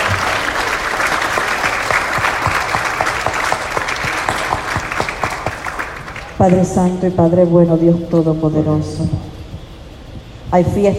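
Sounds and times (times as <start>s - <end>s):
audience applauding in welcome: 0.0s - 6.9s
speech: 6.4s - 9.3s, 10.5s - 10.9s.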